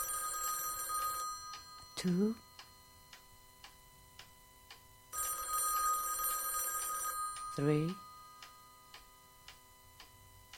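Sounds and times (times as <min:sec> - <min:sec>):
old-style telephone bell ringing: 0:00.0 - 0:03.0, 0:05.1 - 0:08.9
speech: 0:02.0 - 0:02.5, 0:07.6 - 0:08.0.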